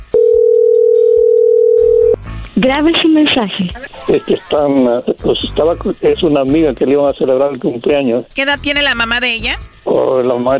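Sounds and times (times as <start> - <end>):
telephone call electronic ringback tone through an earpiece: 0.2 - 2.2
speech: 2.6 - 10.5
laughter: 3.7 - 5.0.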